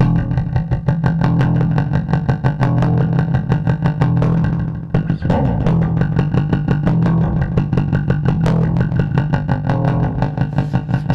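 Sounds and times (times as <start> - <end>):
distorted electric guitars of a live rock band: 0.0 - 11.1
driving steady drumbeat with punchy hits: 4.2 - 11.1.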